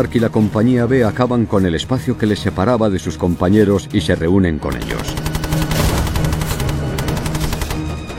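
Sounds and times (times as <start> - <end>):
speech: 0.0 - 5.3
rapid bursts of covering gunfire on a battlefield: 4.8 - 8.0.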